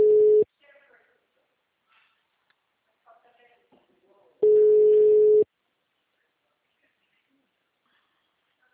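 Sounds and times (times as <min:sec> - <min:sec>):
telephone busy signal on a call: 0:00.0 - 0:00.4, 0:04.4 - 0:05.4.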